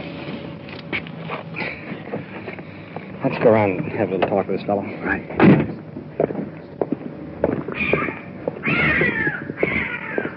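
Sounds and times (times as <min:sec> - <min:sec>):
speech: 0:03.2 - 0:06.3
cat meowing: 0:07.8 - 0:10.3.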